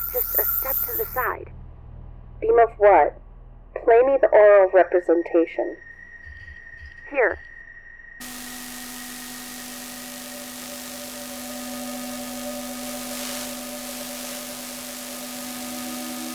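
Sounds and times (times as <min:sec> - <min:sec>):
faint sustained humming tones: 0:00.0 - 0:16.3
speech: 0:01.2 - 0:01.6, 0:02.4 - 0:03.2, 0:03.8 - 0:05.9, 0:07.1 - 0:07.5
steady broadband static hiss: 0:08.2 - 0:16.3.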